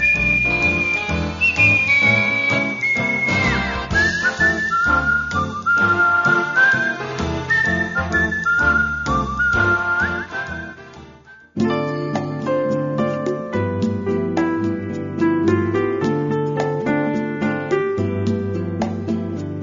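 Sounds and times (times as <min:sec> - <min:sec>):
bright clear whistling melody: 0:00.0 - 0:12.9
upbeat band accompaniment with chords and percussion: 0:00.0 - 0:19.5.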